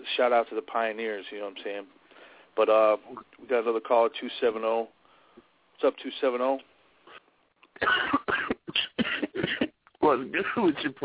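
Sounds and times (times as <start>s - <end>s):
speech: 0.2s - 2.0s, 2.6s - 6.7s, 7.8s - 8.5s, 10.1s - 11.0s
caller coughing on a phone line: 7.8s - 9.8s.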